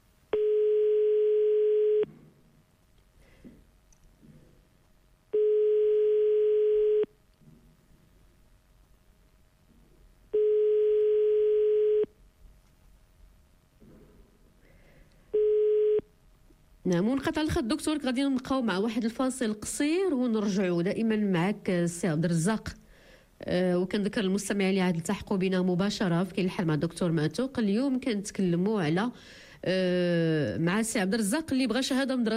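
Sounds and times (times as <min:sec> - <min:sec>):
telephone ringback tone: 0:00.4 - 0:02.1, 0:05.4 - 0:07.1, 0:10.4 - 0:12.1
speech: 0:16.9 - 0:22.8, 0:23.4 - 0:32.3.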